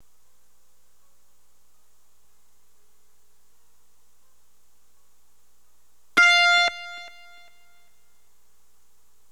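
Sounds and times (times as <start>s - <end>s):
synth pad: 6.2s - 7.8s.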